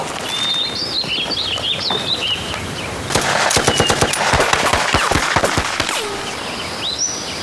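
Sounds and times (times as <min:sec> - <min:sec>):
birds chirping: 0:00.0 - 0:07.4
machine gun firing: 0:03.1 - 0:06.4.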